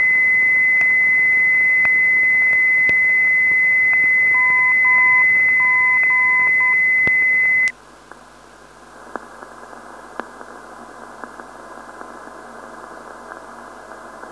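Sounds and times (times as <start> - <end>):
296 kHz non-directional beacon signal: 0.0 - 7.8.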